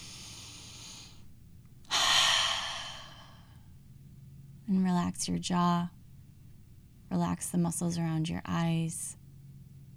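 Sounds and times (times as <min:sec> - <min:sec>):
deep breath in a guided relaxation exercise: 0:00.0 - 0:01.2, 0:01.9 - 0:03.6
speech: 0:04.7 - 0:06.0, 0:07.1 - 0:09.2.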